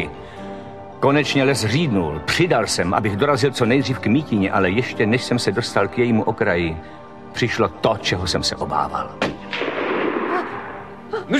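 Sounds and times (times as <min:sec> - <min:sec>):
speech: 0:01.0 - 0:09.3, 0:11.1 - 0:11.3
loud rifle gunshot with rumbling boom: 0:09.2 - 0:11.0.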